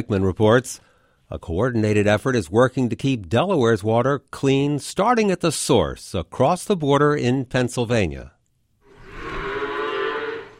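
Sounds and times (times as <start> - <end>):
speech: 0.0 - 8.4
dairy cow mooing on a farm in Chester County, Pennsylvania: 8.9 - 10.5.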